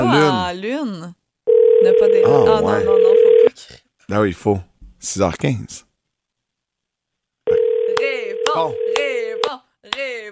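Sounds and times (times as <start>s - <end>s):
speech: 0.0s - 1.2s, 1.8s - 5.9s, 8.5s - 9.0s
telephone ringing tone heard through the line during outgoing call: 1.5s - 3.5s, 7.5s - 9.5s.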